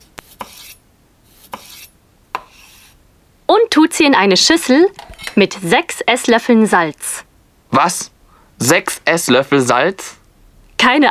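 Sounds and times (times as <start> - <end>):
knife chopping large very ripe tomatoes: 0.0 - 3.0
speech: 3.5 - 10.2, 10.8 - 11.0.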